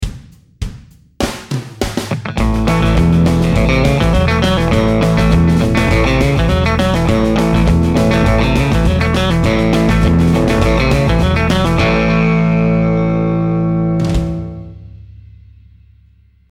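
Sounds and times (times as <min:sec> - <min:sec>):
country lick: 0:02.1 - 0:14.8.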